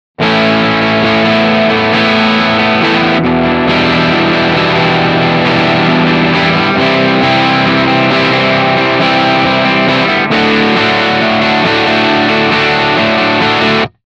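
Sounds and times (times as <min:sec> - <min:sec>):
overdriven guitar through Guitar Rig: 0:00.2 - 0:14.0.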